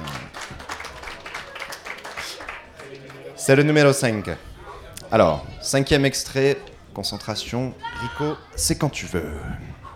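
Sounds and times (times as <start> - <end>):
audience applause: 0.0 - 3.7
murmur of voices: 0.0 - 9.9
speech: 3.4 - 4.5, 5.1 - 9.8.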